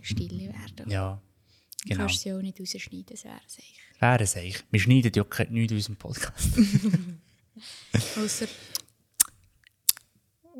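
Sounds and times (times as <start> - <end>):
speech: 0.0 - 8.8
laughter: 6.2 - 8.8
lip smacking clicks: 8.7 - 10.1.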